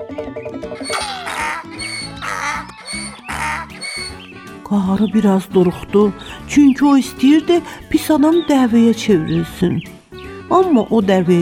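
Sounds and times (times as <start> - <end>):
speech: 0.1 - 0.7, 4.7 - 11.4
donkey braying: 0.7 - 4.6
steady tonal background: 0.8 - 7.5.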